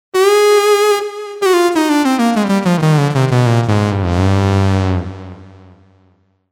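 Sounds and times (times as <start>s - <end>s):
saw lead synth: 0.2s - 5.4s.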